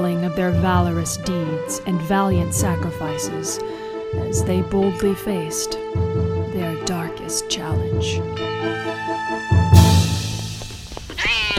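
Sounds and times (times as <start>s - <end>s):
speech: 0.2s - 9.8s
cat meowing: 11.1s - 11.5s.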